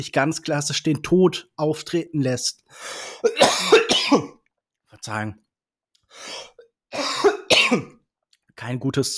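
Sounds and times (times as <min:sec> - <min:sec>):
speech: 0:00.0 - 0:04.4, 0:05.0 - 0:05.4, 0:06.1 - 0:08.0, 0:08.6 - 0:09.1
person coughing with a throaty raspy edge: 0:03.2 - 0:04.4, 0:07.0 - 0:08.0.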